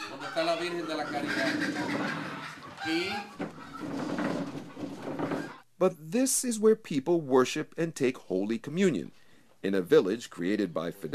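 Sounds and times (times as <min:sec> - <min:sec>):
several chickens clucking during Mass: 0:00.0 - 0:05.7
speech: 0:00.4 - 0:04.7, 0:05.8 - 0:11.1.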